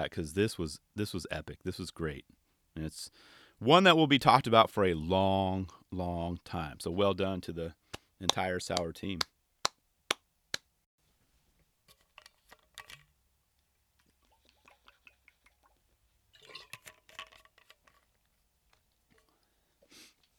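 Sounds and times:
speech: 0.0s - 9.3s
sipping water: 13.6s - 20.3s
slurping: 14.0s - 20.3s.

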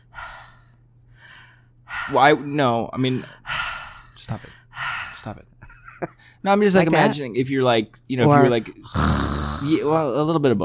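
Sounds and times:
speech: 2.1s - 3.4s, 4.3s - 4.6s, 5.2s - 10.6s
person imitating heavy breathing of a prank caller: 8.3s - 10.1s.

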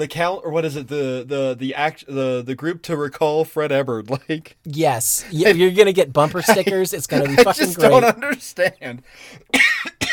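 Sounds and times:
speech: 0.0s - 9.7s
person coughing sharply: 9.5s - 10.1s.

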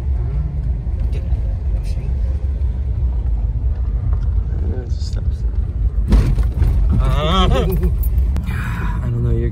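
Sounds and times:
cars rumbling on a nearby road: 0.0s - 9.5s.

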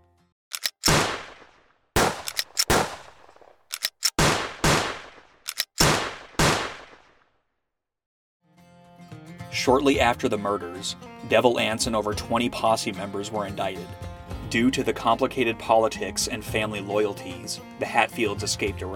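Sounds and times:
volley of loud gunshots from a firing squad execution: 0.8s - 7.2s
speech: 9.6s - 18.9s.

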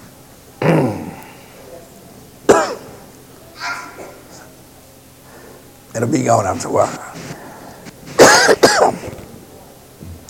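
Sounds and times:
person coughing: 0.6s - 1.2s, 2.5s - 3.0s, 8.2s - 9.2s
person clearing their throat: 0.6s - 1.4s, 2.5s - 3.0s, 8.2s - 9.2s
speech: 6.0s - 7.3s.

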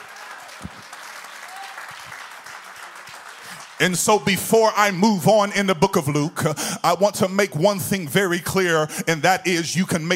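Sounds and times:
sharp claps: 0.0s - 3.8s
audience applause: 0.0s - 3.9s
speech: 3.8s - 10.1s.

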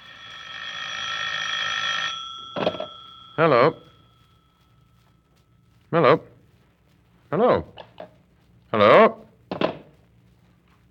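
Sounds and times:
telephone bell ringing in a flat behind Portland Place, England: 0.0s - 5.1s
speech: 3.4s - 3.9s, 5.9s - 6.3s.

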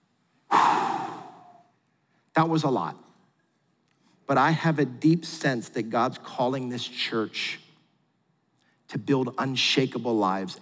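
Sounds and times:
church congregation exhaling together: 0.5s - 1.6s
speech: 2.4s - 3.1s, 4.3s - 7.6s, 8.9s - 10.6s.

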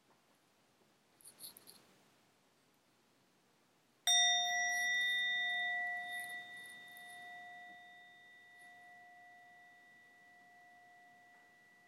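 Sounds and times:
meditation bell rung to begin meditation practice: 4.1s - 11.8s.

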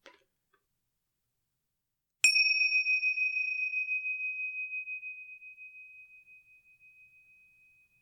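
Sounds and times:
small meditation bell struck: 2.2s - 7.9s.

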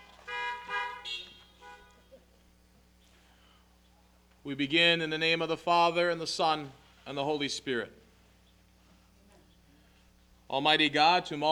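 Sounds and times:
car horns honking outdoors: 0.0s - 2.1s
noise: 0.0s - 11.5s
speech: 4.4s - 8.0s, 10.5s - 11.5s.

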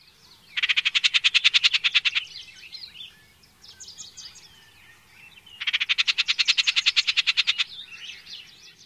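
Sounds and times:
icterid softer scratchy calls and chirps: 0.0s - 8.8s
icterid harsh chattering rattle call: 0.6s - 2.3s, 5.6s - 7.7s.

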